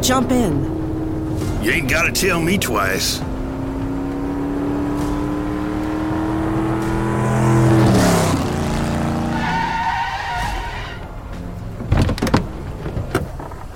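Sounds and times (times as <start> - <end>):
speech: 0.0 - 0.8, 1.6 - 3.3
tires skidding and screeching on snow: 0.0 - 11.5
car engine growling: 0.0 - 13.7
car doors clicking open: 11.7 - 13.7.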